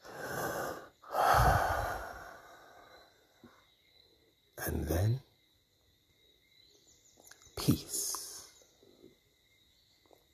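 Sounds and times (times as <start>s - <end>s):
heavy panting breaths: 0.0s - 3.0s
speech: 4.6s - 5.3s.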